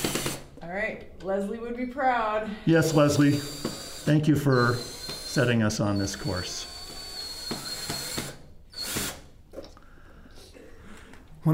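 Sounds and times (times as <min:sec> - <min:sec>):
power drill driving in screws: 0:00.0 - 0:00.4, 0:02.8 - 0:09.3
speech: 0:00.7 - 0:06.7.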